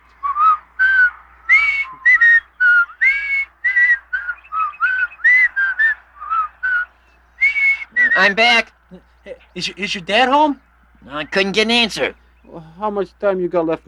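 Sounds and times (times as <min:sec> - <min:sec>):
two people whistling a bouncy TV theme song: 0:00.2 - 0:08.4
speech: 0:08.2 - 0:12.2, 0:12.8 - 0:13.8.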